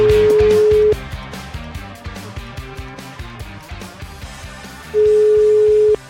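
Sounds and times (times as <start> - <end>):
telephone call ringing tone: 0.0 - 1.0, 5.0 - 6.0.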